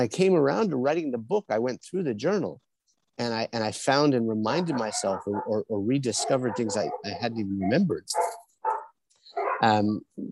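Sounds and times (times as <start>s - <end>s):
speech: 0.0s - 2.6s, 3.2s - 8.4s, 9.6s - 10.3s
neighbors' dogs barking: 4.5s - 9.8s.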